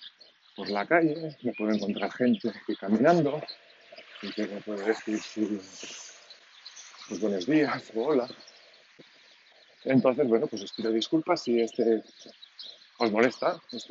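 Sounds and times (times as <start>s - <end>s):
faint birds chirping and twittering: 0.0s - 13.8s
speech: 0.6s - 3.6s, 4.2s - 6.0s, 7.1s - 8.5s, 9.8s - 13.8s.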